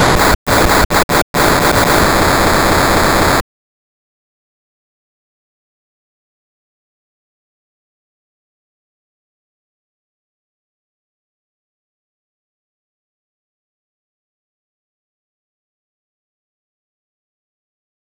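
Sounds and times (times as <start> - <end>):
impulses: 0.1 - 3.4.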